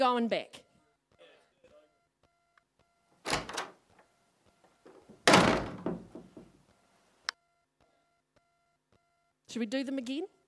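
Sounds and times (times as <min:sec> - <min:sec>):
speech: 0:00.0 - 0:00.6, 0:09.5 - 0:10.4
door swinging and shutting with a solid thunk: 0:03.2 - 0:04.0, 0:04.9 - 0:06.6
door latch click: 0:03.3 - 0:03.8, 0:04.9 - 0:06.5.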